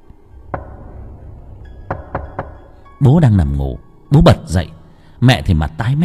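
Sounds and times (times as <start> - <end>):
eerie pounding knocks on a back door at night: 0.5 - 1.0, 1.6 - 3.0
speech: 3.0 - 6.0.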